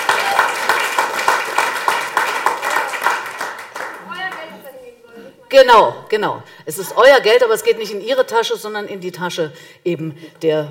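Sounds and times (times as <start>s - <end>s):
audience clapping: 0.0s - 4.6s
speech: 5.5s - 10.6s.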